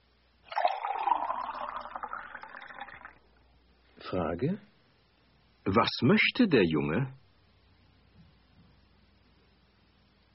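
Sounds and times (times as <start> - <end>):
water pouring into a glass: 0.5 - 3.2
speech: 4.1 - 4.7, 5.7 - 7.2.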